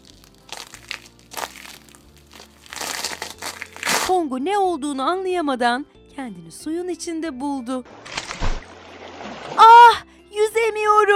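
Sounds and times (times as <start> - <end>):
ice cracking and breaking apart: 0.0 - 4.2
speech: 4.1 - 8.1, 10.8 - 11.1.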